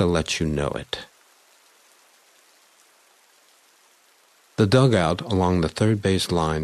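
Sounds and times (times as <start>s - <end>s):
speech: 0.0s - 1.1s, 4.6s - 6.6s
rain pelting a dugout roof: 0.0s - 6.6s.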